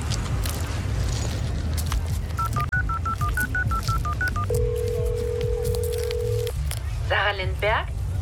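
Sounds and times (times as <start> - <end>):
loud rumbling din: 0.0 - 8.1
mobile phone keypad beeps: 2.4 - 6.5
mobile phone ringing tone: 2.4 - 6.5
speech: 7.4 - 8.0.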